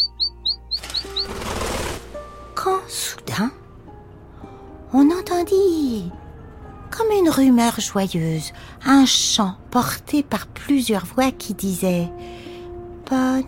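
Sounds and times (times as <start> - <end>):
canary chirping in its cage: 0.0 - 1.8
canary wings flapping in its cage: 0.7 - 2.4
speech: 2.9 - 3.6, 4.9 - 6.2, 7.0 - 12.4, 13.1 - 13.4.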